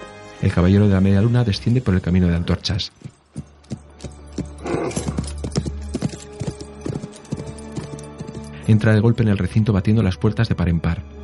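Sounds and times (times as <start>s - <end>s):
speech: 0.4s - 3.2s, 8.7s - 11.1s
sturdy jet-black horse galloping, hooves clip-clopping: 1.2s - 8.9s.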